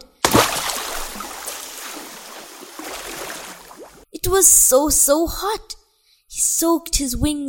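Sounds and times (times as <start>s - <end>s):
river water lapping and splashing: 0.3s - 4.0s
speech: 4.3s - 5.8s, 6.6s - 7.4s.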